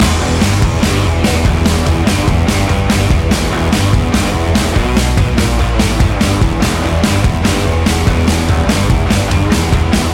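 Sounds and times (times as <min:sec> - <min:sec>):
rock commercial music loop: 0:00.0 - 0:10.1.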